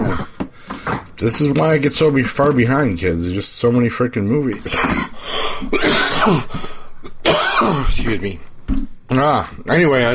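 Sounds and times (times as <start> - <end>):
speech: 1.2 - 6.8, 7.8 - 8.5, 9.1 - 10.1
person coughing: 4.7 - 8.1.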